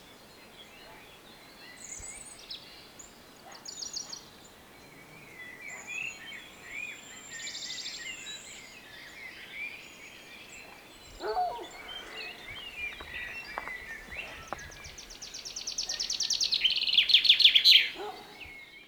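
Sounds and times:
Common chaffinch Fringilla coelebs song: 9.7s - 18.8s.

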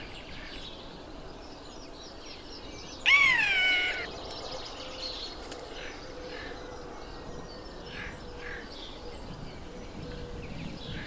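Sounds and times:
Eurasian jay Garrulus glandarius rasping screech: 3.1s - 4.1s.

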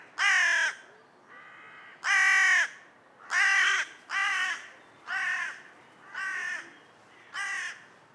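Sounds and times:
Corvus corone carrion crow cawing: 0.2s - 5.6s, 7.4s - 7.8s.

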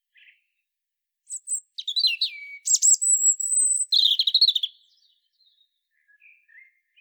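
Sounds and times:
European robin Erithacus rubecula singing: 1.3s - 6.9s.

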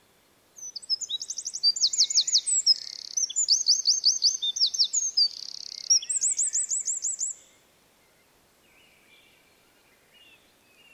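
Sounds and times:
Eurasian wren Troglodytes troglodytes singing: 0.6s - 7.4s.

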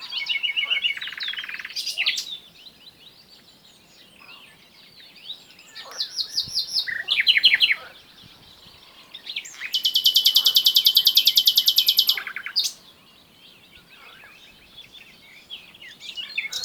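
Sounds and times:
common nightingale Luscinia megarhynchos song with chattering trills and rattle: 0.0s - 16.6s.

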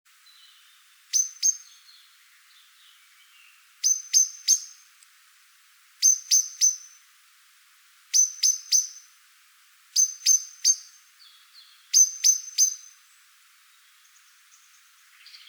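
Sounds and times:
common blackbird chink calls, Turdus merula: 0.4s - 2.1s, 3.8s - 4.8s, 6.0s - 7.0s, 8.2s - 9.1s, 10.0s - 13.0s.

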